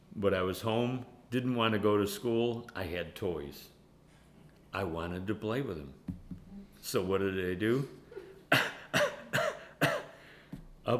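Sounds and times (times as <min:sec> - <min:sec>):
speech: 0:00.2 - 0:03.8, 0:04.7 - 0:06.2, 0:06.8 - 0:08.7
child faking a cough in the morning: 0:08.5 - 0:10.2.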